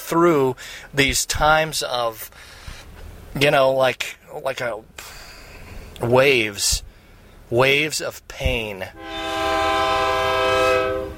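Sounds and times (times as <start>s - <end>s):
speech: 0.1s - 2.6s, 3.4s - 5.2s, 6.0s - 6.9s, 7.5s - 9.2s
train horn blast: 8.9s - 11.1s.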